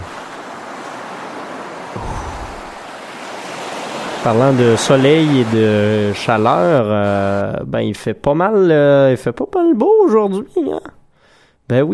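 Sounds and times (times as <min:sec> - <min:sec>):
ocean waves breaking on a sunny beach: 0:00.0 - 0:07.6
speech: 0:04.2 - 0:11.0, 0:11.7 - 0:11.9.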